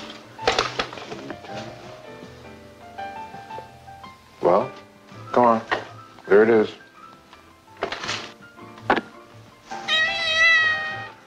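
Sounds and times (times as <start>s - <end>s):
faint household clatter: 0.0s - 2.4s, 4.6s - 9.9s
speech: 6.4s - 6.8s
cat meowing for food: 9.7s - 11.2s.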